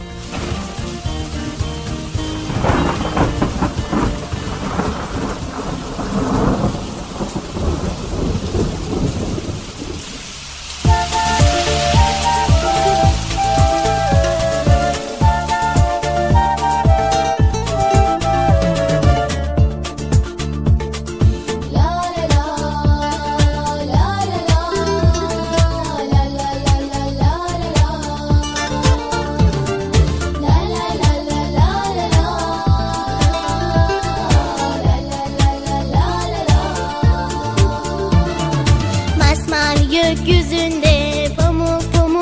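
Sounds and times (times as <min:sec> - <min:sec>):
heavy rain pouring: 0:00.0 - 0:42.2
deep thunder rumbling: 0:00.2 - 0:17.0.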